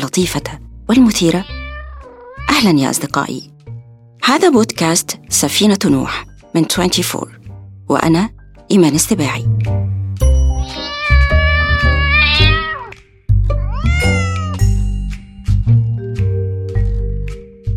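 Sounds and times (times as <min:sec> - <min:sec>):
speech: 0:00.0 - 0:01.6, 0:02.6 - 0:03.5, 0:04.2 - 0:09.8
cat meowing: 0:01.3 - 0:02.7, 0:10.6 - 0:14.6
soft music with light chiming tones: 0:05.8 - 0:07.4, 0:10.1 - 0:11.6, 0:13.9 - 0:17.7.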